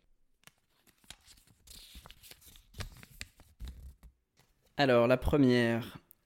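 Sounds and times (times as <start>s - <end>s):
quotation cards shuffled and drawn from a pile: 0.4s - 4.7s
speech: 4.8s - 6.0s.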